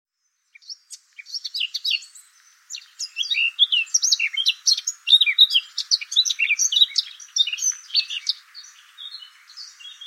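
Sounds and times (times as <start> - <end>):
Eurasian blackcap Sylvia atricapilla warbling song: 0.3 - 10.0.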